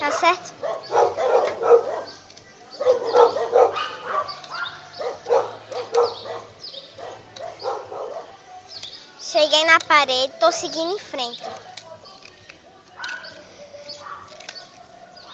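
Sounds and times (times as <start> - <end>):
speech: 0.0 - 0.7, 10.0 - 11.7
dog whiny yips: 0.0 - 2.2, 2.8 - 8.3, 13.0 - 13.4, 14.0 - 14.4
dog barking: 0.0 - 8.4, 11.4 - 11.8, 13.0 - 13.4, 14.0 - 14.4.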